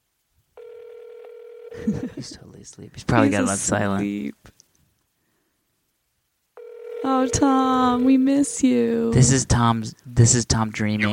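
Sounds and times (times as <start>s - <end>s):
phone ringback tone during an outgoing call: 0.6s - 1.8s, 6.6s - 8.2s
speech: 1.7s - 4.6s, 7.2s - 11.1s.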